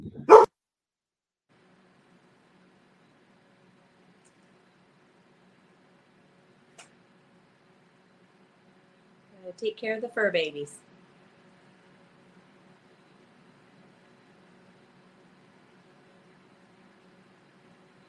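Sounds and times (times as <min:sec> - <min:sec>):
dog barking: 0:00.2 - 0:00.5
speech: 0:09.5 - 0:10.8.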